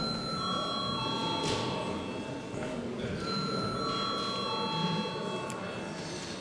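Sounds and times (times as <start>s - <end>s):
parliament chamber bell ringing before vote: 0.0s - 2.3s, 3.2s - 5.5s
faint murmur: 0.0s - 6.3s.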